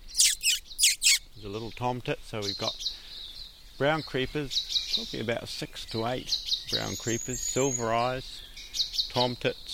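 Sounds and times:
shrill squeaky notes made by a person's mouth to attract small birds: 0.1s - 1.2s
speech: 1.4s - 3.0s, 3.8s - 8.5s, 9.2s - 9.7s.

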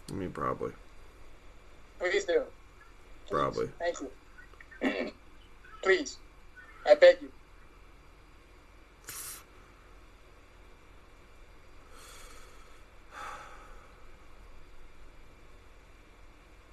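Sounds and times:
quiet hiss: 0.0s - 16.7s
speech: 0.1s - 0.9s, 2.0s - 2.6s, 3.3s - 4.2s, 5.8s - 6.2s, 6.8s - 7.4s
heavy breathing: 11.9s - 14.1s.

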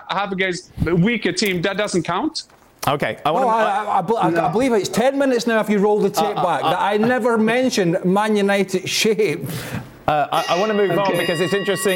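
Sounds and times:
speech: 0.1s - 11.9s
laughter: 5.8s - 7.5s
fire alarm ringing with a high-pitched tone: 10.4s - 11.9s.

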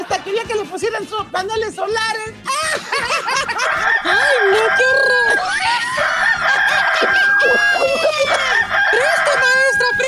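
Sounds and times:
laughter: 0.0s - 1.1s, 2.4s - 10.0s
speech: 0.1s - 6.0s
rooster crowing: 3.4s - 10.0s
busy noisy farmyard background: 3.5s - 10.0s
scratchy overlapping clucking: 3.5s - 10.0s.

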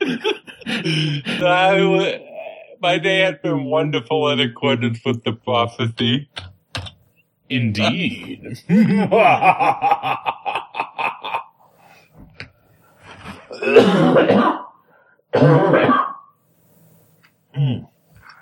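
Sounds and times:
rhythmic laughter: 0.0s - 1.4s, 8.6s - 11.7s
speech: 0.1s - 2.2s, 2.8s - 6.5s, 7.5s - 10.4s, 13.6s - 14.6s, 15.3s - 16.0s
person coughing turned away from microphone: 13.4s - 14.7s, 15.3s - 16.2s.

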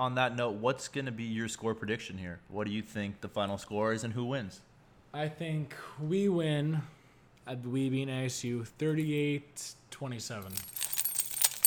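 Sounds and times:
speech: 0.0s - 10.8s
keys jangling: 10.4s - 11.6s.

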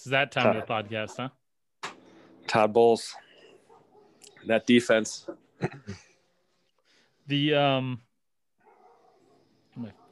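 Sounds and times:
speech: 0.0s - 1.4s, 2.5s - 3.2s, 4.4s - 6.1s, 7.3s - 8.1s, 9.8s - 10.0s
dog barking from upstairs: 3.4s - 4.2s, 8.6s - 10.1s.

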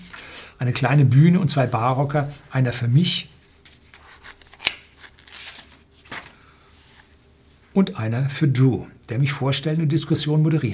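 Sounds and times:
speech: 0.6s - 3.3s, 7.8s - 10.7s
paper pages turning: 3.4s - 7.2s
sharp paper snap: 3.9s - 6.4s.

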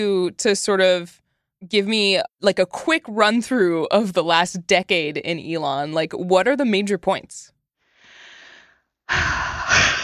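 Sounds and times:
speech: 0.0s - 7.6s, 9.1s - 10.0s
person taking a deep breath: 7.8s - 10.0s.

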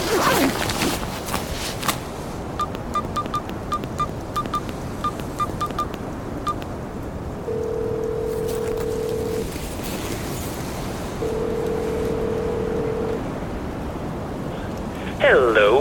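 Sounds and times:
water noise: 0.0s - 15.8s
wind roaring on a cold night: 0.0s - 15.8s
satellite phone ringing tones: 2.6s - 6.6s, 7.4s - 9.5s, 11.2s - 13.2s.

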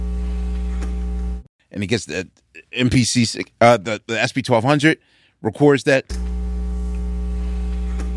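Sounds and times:
low feedback hum from turntable stylus through mixer: 0.0s - 1.5s, 6.1s - 8.1s
speech: 1.7s - 6.3s.

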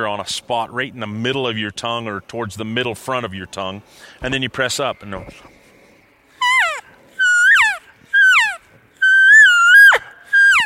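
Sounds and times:
speech: 0.0s - 5.6s
nasal elk cow calls blown on a mouth diaphragm call: 6.4s - 10.6s.

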